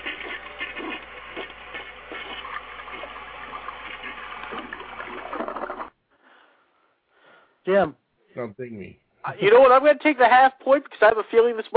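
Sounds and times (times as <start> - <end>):
toilet flushing: 0.0 - 6.0
speech: 7.7 - 11.7.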